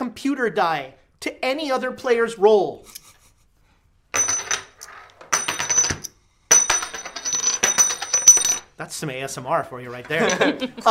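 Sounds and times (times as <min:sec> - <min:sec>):
speech: 0:00.2 - 0:03.0, 0:08.8 - 0:10.8
small hard game tokens clinking as they are handed out: 0:04.2 - 0:08.7
laughter: 0:10.1 - 0:10.8.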